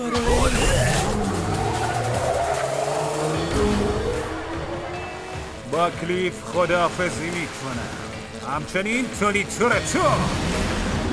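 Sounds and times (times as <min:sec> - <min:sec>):
car tires screeching and skidding: 0:00.0 - 0:11.1
racing car engines roaring: 0:00.0 - 0:11.1
speech: 0:05.8 - 0:10.7.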